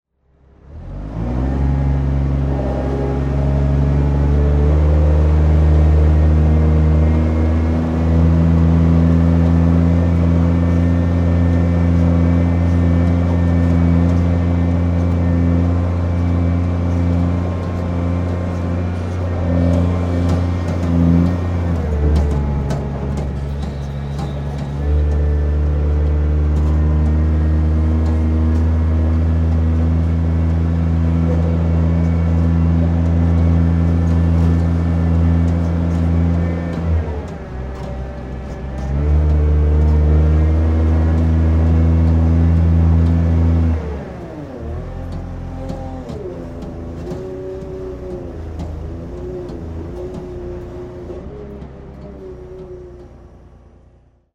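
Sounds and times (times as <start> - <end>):
industrial container yard ambience: 0.2 - 54.3.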